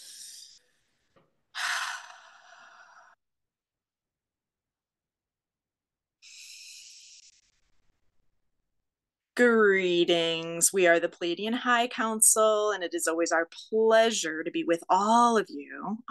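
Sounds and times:
slow deep breaths taken before a meditation: 0.0s - 3.2s, 6.2s - 8.0s
speech: 9.4s - 16.0s.

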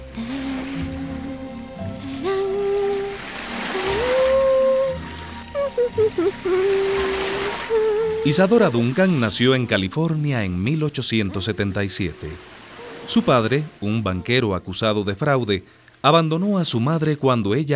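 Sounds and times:
long sliding tonal calls: 0.0s - 9.2s, 11.3s - 13.8s
ocean waves: 0.0s - 14.2s
speech: 8.2s - 17.7s.

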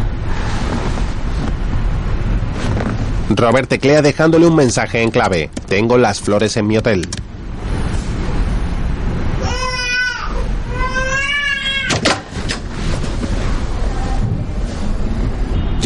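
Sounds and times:
constant low rumbling background: 0.0s - 15.8s
speech: 3.3s - 7.2s
baby crying in wavering wails: 9.4s - 12.0s.

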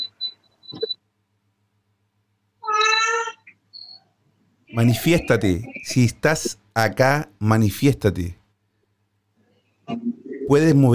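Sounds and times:
loud drawn-out cat meow: 2.6s - 3.5s
speech: 4.8s - 8.4s, 9.9s - 10.9s.

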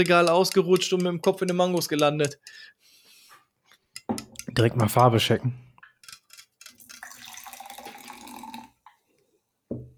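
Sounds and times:
speech: 0.0s - 2.9s, 4.1s - 5.6s
nearly clear liquid pouring into a glass: 6.8s - 8.9s.

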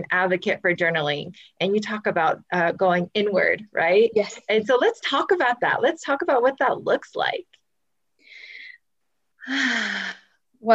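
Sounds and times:
speech: 0.0s - 7.6s, 9.5s - 10.7s
deep breath: 8.2s - 8.8s.

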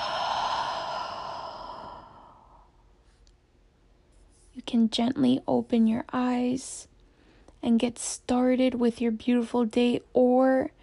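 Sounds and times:
long open-mouthed exhale: 0.0s - 2.7s
speech: 4.7s - 6.9s, 7.6s - 10.8s.

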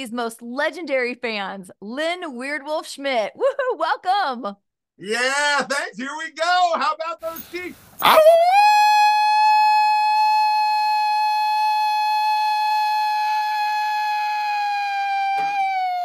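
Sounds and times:
speech: 0.0s - 9.1s
Kansas City Chiefs fan imitating a wolf howl before a big game: 8.0s - 16.0s.

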